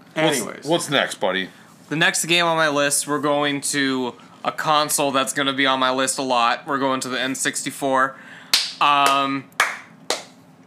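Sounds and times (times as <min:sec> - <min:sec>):
speech: 0:00.2 - 0:09.6
slow sharp hand claps: 0:08.5 - 0:10.4.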